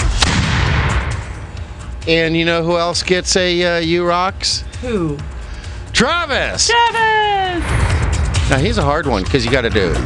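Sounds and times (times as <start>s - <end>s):
booming explosion sound effect played from a soundboard: 0.0s - 1.4s, 7.6s - 8.6s
speech: 2.1s - 5.3s, 6.0s - 7.8s, 8.5s - 10.0s.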